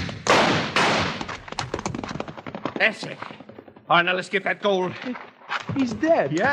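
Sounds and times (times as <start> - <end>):
gunshots during a Western holdup: 0.0 - 2.3
speech: 2.8 - 6.5.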